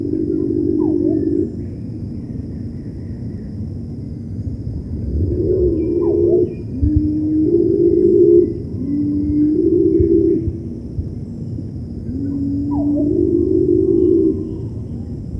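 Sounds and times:
cinnamon-bellied imperial pigeon giving deep moaning hoots: 0.0s - 1.8s, 5.0s - 11.0s, 12.0s - 15.2s.

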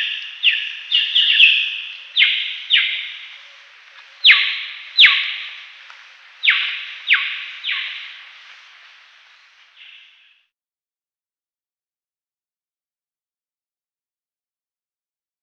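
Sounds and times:
Sri Lanka myna ringing calls dropping in pitch: 0.0s - 10.1s.

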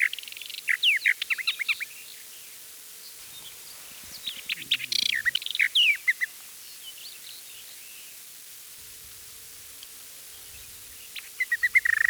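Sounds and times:
Eastern Orphean warbler singing: 0.0s - 8.3s, 10.2s - 12.0s.

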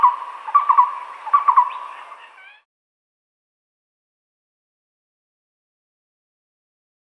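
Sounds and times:
moustached barbet giving deep hollow hoots: 0.0s - 2.7s.

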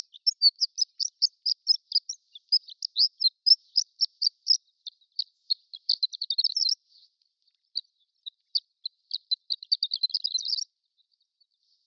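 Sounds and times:
prairie subspecies of horned lark giving high tinkling twitters: 0.0s - 6.8s, 8.3s - 10.7s.

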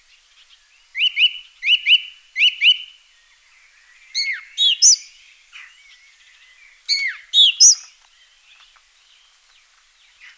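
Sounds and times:
song thrush singing upslurred whistled notes: 0.4s - 9.3s.

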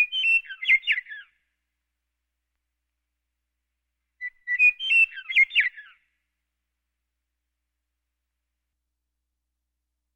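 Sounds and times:
western meadowlark singing: 0.0s - 1.4s, 4.2s - 6.1s.

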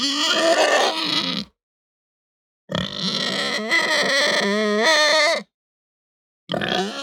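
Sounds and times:
Hampshire pig squealing: 0.0s - 1.5s, 2.7s - 5.5s, 6.5s - 7.0s.

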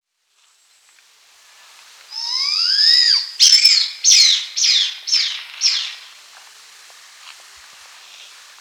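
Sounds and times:
blood pheasant squealing and screeching: 2.1s - 6.0s.

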